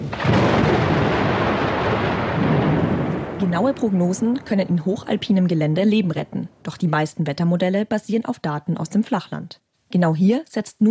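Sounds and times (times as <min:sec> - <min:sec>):
loud sustained roll of thunder: 0:00.0 - 0:06.8
speech: 0:03.4 - 0:10.9.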